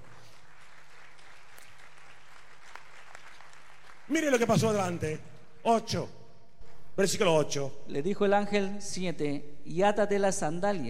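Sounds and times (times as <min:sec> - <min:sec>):
large crowd applauding: 0:00.0 - 0:05.1
speech: 0:04.1 - 0:06.2, 0:07.0 - 0:10.8.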